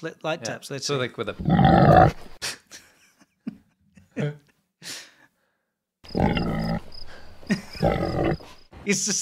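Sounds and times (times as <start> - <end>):
speech: 0.0 - 2.4, 8.9 - 9.2
pig grunting, squealing and snorting on a roof: 1.4 - 2.4, 6.1 - 8.6.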